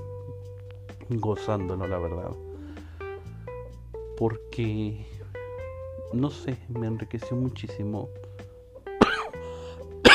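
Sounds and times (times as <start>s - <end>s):
speech: 1.1s - 2.5s, 4.2s - 5.2s, 6.1s - 8.2s
person coughing harshly: 9.0s - 9.4s.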